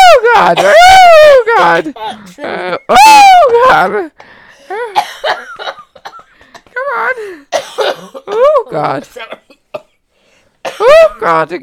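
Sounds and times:
woman coughing harshly: 0.4s - 1.0s, 4.8s - 10.0s, 10.6s - 11.2s
speech: 0.5s - 1.0s, 1.8s - 5.4s, 8.6s - 9.4s, 10.8s - 11.6s.

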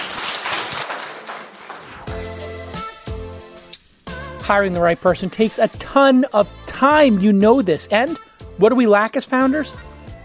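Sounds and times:
audience applause: 0.0s - 2.1s
speech: 4.5s - 9.9s.

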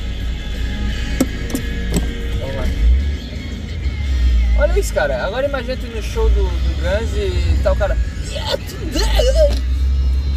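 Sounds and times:
low rumble of an idling car interior in a traffic queue: 0.0s - 10.3s
car handbrake being pulled with ratcheting clicks: 1.2s - 2.2s
speech: 4.8s - 9.6s.

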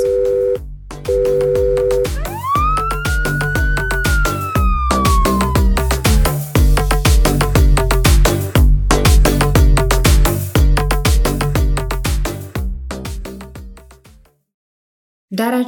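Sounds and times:
steady pounding rhythmic beat: 0.0s - 14.3s
ambulance siren wailing: 1.3s - 6.7s.

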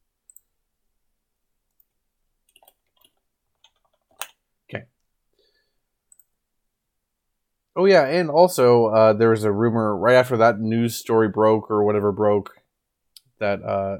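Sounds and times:
clicks and taps from typing out a message: 2.5s - 4.4s
speech: 4.7s - 4.9s, 7.8s - 12.6s, 13.4s - 13.9s.

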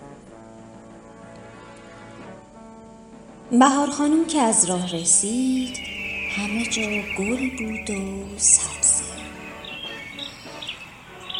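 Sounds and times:
speech: 3.5s - 9.0s
sparrow chirping: 4.3s - 11.3s.

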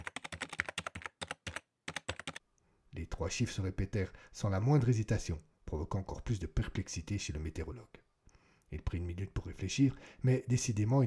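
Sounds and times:
meteorologist tapping a computer keyboard: 0.0s - 2.4s
speech: 3.0s - 8.0s, 8.7s - 11.0s.

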